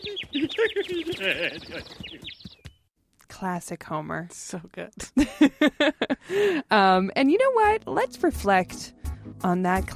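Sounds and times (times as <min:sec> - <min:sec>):
laughter: 0:00.0 - 0:02.2, 0:05.1 - 0:06.6
bird chirping in cartoon clip: 0:00.0 - 0:02.9
speech: 0:00.4 - 0:02.2, 0:03.4 - 0:09.9.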